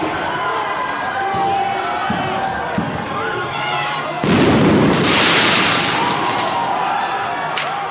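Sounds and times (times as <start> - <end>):
crowd murmuring and shouting at a protest: 0.0 - 7.8
firework exploding with a loud sharp crackling blast at a protest: 4.2 - 6.8.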